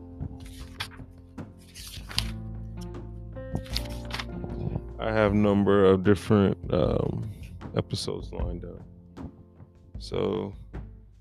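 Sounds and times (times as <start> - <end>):
paper pages being turned: 0.3 - 2.5, 3.6 - 4.4
speech: 5.0 - 8.9, 10.0 - 10.6.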